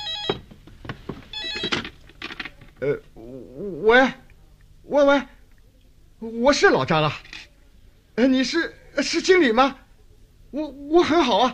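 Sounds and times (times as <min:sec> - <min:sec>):
telephone ringing in a company office: 0:00.0 - 0:00.5, 0:01.3 - 0:02.0
speech: 0:02.8 - 0:04.2, 0:04.9 - 0:05.4, 0:06.2 - 0:07.3, 0:08.2 - 0:09.8, 0:10.5 - 0:11.5.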